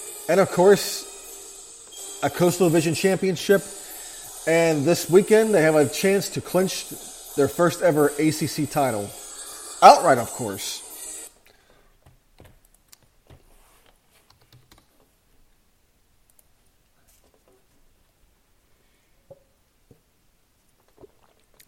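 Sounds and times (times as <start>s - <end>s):
low hiss: 0.0s - 21.6s
speech: 0.3s - 1.1s, 2.2s - 3.8s, 4.4s - 9.2s, 9.8s - 10.8s
computer keyboard and mouse clicking and tapping: 14.3s - 14.9s.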